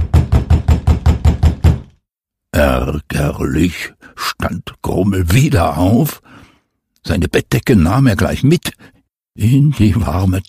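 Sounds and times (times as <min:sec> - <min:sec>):
loud rapid knocking on a door: 0:00.0 - 0:02.0
speech: 0:02.6 - 0:06.4, 0:07.0 - 0:10.4.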